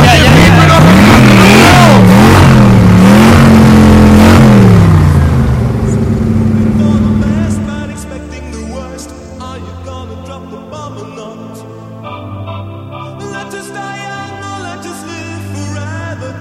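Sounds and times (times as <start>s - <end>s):
DeLorean car engine starting and revving: 0.0s - 8.6s.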